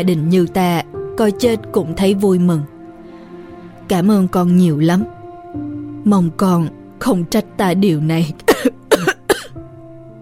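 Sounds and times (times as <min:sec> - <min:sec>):
speech: 0:00.0 - 0:02.7, 0:03.9 - 0:08.8
old man coughing up blood: 0:08.5 - 0:09.6.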